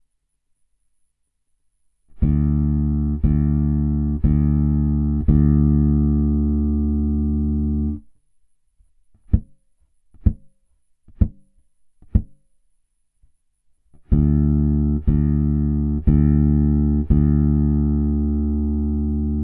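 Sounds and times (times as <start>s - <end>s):
bass guitar played with ghost notes: 2.2s - 8.0s, 14.1s - 19.4s.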